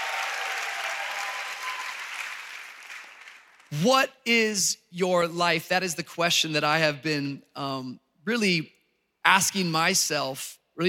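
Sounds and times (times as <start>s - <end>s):
church congregation applauding: 0.0s - 3.8s
speech: 3.7s - 10.8s.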